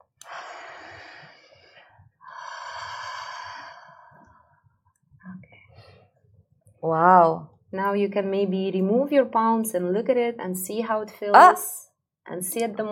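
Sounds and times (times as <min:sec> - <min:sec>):
breathy ha exhalations through the mouth during a releasing exercise: 0:00.2 - 0:04.4
speech: 0:06.8 - 0:12.9.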